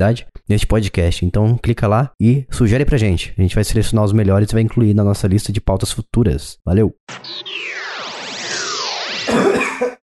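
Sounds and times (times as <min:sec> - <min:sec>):
speech: 0:00.0 - 0:07.8
sweeping electronic jingle with gliding tones: 0:07.1 - 0:09.6
person coughing: 0:09.3 - 0:10.0.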